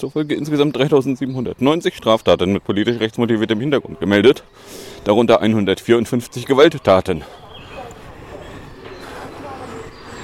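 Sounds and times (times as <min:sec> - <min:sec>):
speech: 0:00.0 - 0:07.4
faint indistinct voices: 0:02.4 - 0:10.2
train passing through a station without stopping: 0:06.3 - 0:10.2.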